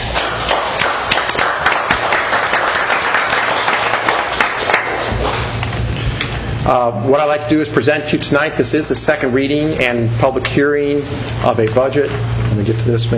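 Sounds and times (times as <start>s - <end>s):
audience applause at a public meeting: 0.0s - 5.6s
speech: 6.7s - 13.1s.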